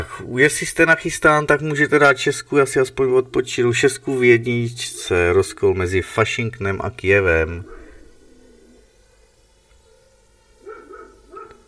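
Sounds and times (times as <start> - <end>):
low hum: 0.0 - 11.6
speech: 0.2 - 7.8
neighbours' dog barking: 10.6 - 11.6.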